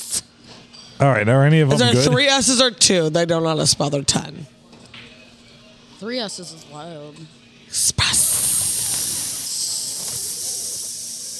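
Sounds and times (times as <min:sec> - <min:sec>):
loud steady hiss: 0:00.0 - 0:00.3, 0:07.7 - 0:11.3
speech: 0:01.0 - 0:04.6, 0:06.0 - 0:08.4.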